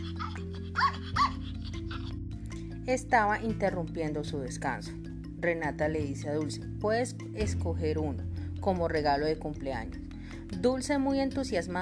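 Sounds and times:
puppies whimpering and crying: 0.0s - 2.2s
speech: 2.9s - 11.7s.

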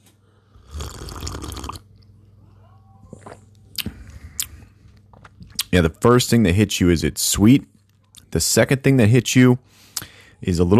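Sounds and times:
slurping hot coffee from a cup: 0.6s - 1.8s
swallowing: 0.6s - 1.9s, 3.2s - 5.7s
speech: 5.7s - 7.7s, 8.4s - 10.7s.

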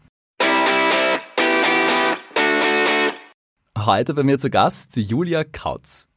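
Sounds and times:
heavily distorted electric guitar chords in a rock riff: 0.4s - 3.3s
speech: 3.9s - 6.1s.

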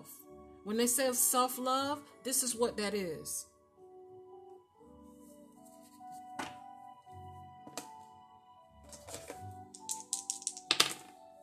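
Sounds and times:
speech: 0.6s - 3.5s
dice clattering across a hard surface: 8.9s - 11.2s.

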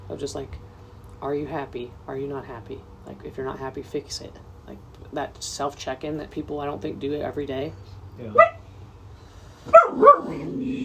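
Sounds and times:
low hum: 0.0s - 10.8s
speech: 0.1s - 8.6s
dog barking: 8.3s - 8.6s, 9.7s - 10.4s.

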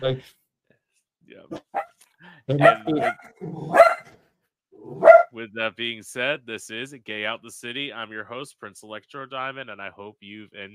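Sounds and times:
speech: 0.0s - 0.4s, 1.3s - 4.0s, 4.8s - 10.7s
dog barking: 1.5s - 1.9s, 2.6s - 4.2s, 4.9s - 5.3s
dog growling: 2.6s - 4.0s.

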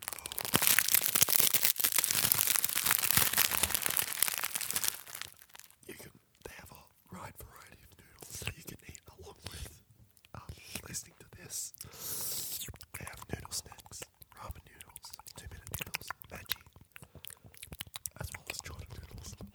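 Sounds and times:
crunching dry ramen noodles: 0.0s - 5.8s, 11.8s - 19.4s.

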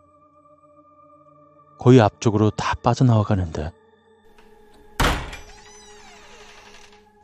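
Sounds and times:
speech: 1.8s - 3.8s
wooden door banging in wind: 4.3s - 7.0s.

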